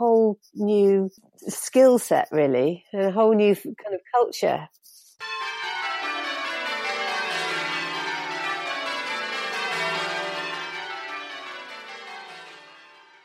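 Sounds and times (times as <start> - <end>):
speech: 0.4 - 5.4
church bells ringing in a peal: 5.2 - 13.2.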